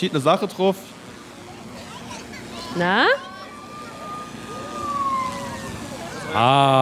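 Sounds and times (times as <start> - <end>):
speech: 0.0 - 1.0, 2.8 - 3.3, 6.3 - 6.8
German two-tone emergency siren from a drone speaker: 2.9 - 6.8.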